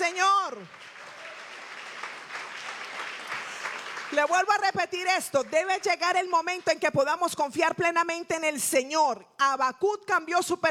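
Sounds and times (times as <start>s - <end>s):
church congregation applause during a sermon: 0.7s - 4.6s
speech: 4.1s - 10.6s.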